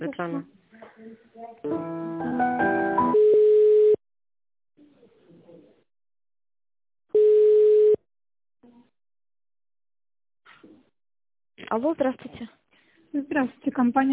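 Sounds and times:
speech: 0:00.0 - 0:02.7, 0:11.7 - 0:14.1
telephone ringback tone while a call is transferred to a finance department: 0:03.1 - 0:04.0, 0:07.2 - 0:08.0.

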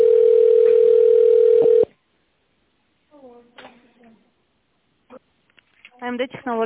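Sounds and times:
telephone call-connecting tone beep: 0:00.0 - 0:01.9.

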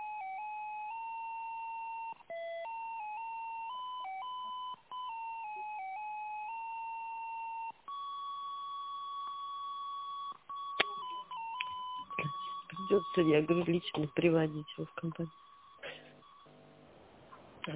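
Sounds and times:
phone call connection tones as a call tries to go through: 0:00.0 - 0:16.9
clicks on phone line: 0:10.6 - 0:12.9
speech: 0:12.9 - 0:15.4.

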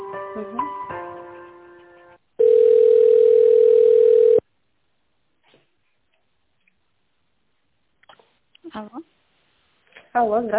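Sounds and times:
speech: 0:00.4 - 0:00.9, 0:08.8 - 0:09.1, 0:10.2 - 0:10.5
telephone hold tone while call is transferred: 0:02.4 - 0:04.4.

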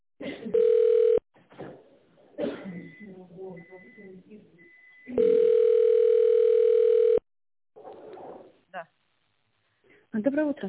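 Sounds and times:
telephone ringing tone while a call is put through to the tender department: 0:00.5 - 0:01.2, 0:05.1 - 0:07.2
people talking: 0:02.4 - 0:04.5, 0:10.1 - 0:10.6.

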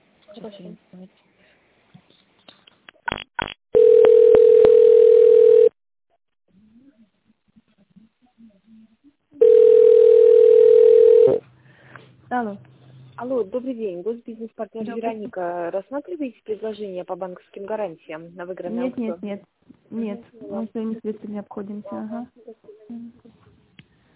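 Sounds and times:
speech: 0:00.4 - 0:01.4, 0:12.3 - 0:23.3
telephone tone during a call transfer: 0:03.8 - 0:05.7, 0:09.4 - 0:11.4.

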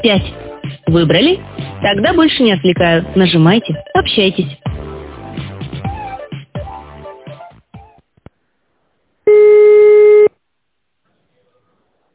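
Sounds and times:
speech: 0:00.0 - 0:04.7
telephone line busy signal tone: 0:09.3 - 0:10.3.

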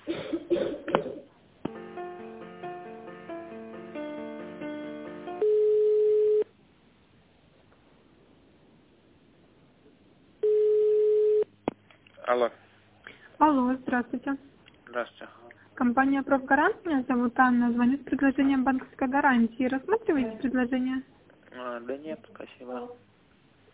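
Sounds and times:
quiet phone line hiss: 0:00.0 - 0:23.7
ringback tone on a phone line while a call to a company is transferred: 0:05.4 - 0:06.5, 0:10.4 - 0:11.5
speech: 0:12.4 - 0:12.6, 0:13.9 - 0:21.1, 0:21.8 - 0:23.1.

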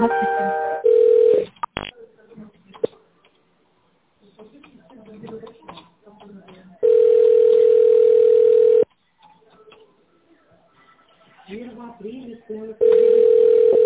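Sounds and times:
steady telephone tone while a call is transferred: 0:00.6 - 0:01.5, 0:06.8 - 0:08.8, 0:12.8 - 0:13.8
quieter talk: 0:01.8 - 0:13.8.

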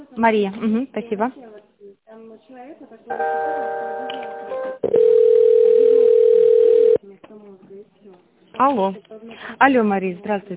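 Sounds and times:
speech: 0:00.2 - 0:01.5, 0:02.1 - 0:05.0, 0:08.6 - 0:10.5
telephone line tones while a call is transferred: 0:03.2 - 0:07.0.

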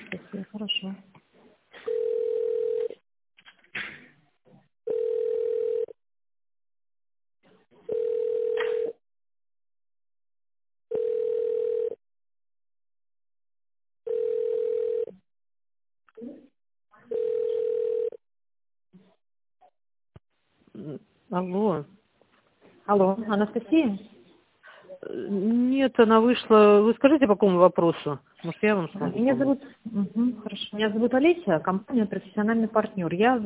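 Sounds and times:
speech: 0:00.1 - 0:01.1, 0:22.9 - 0:24.1, 0:25.0 - 0:33.4
telephone ringback tone while an office call is being transferred: 0:01.9 - 0:03.0, 0:04.9 - 0:06.0, 0:07.9 - 0:09.0, 0:10.9 - 0:12.0, 0:14.1 - 0:15.2, 0:17.1 - 0:18.2.

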